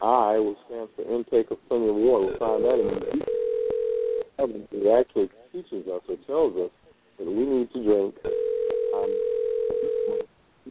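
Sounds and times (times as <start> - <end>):
speech: 0.4 - 3.4, 4.4 - 10.2
telephone ringing: 2.8 - 4.3, 8.3 - 10.3.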